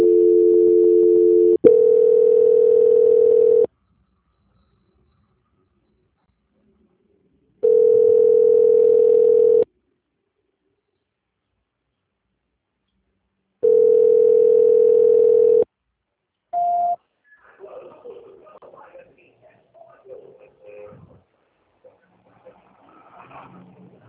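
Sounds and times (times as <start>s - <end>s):
telephone line tones during call transfer: 0.0s - 3.7s, 7.6s - 9.7s, 13.6s - 15.6s.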